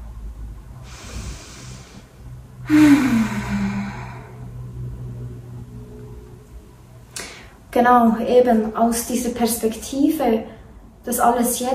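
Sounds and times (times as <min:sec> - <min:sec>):
low hum: 0:00.0 - 0:07.8
deep breath in and sighing exhale during a breathing exercise: 0:00.8 - 0:04.8
speech: 0:07.8 - 0:11.7.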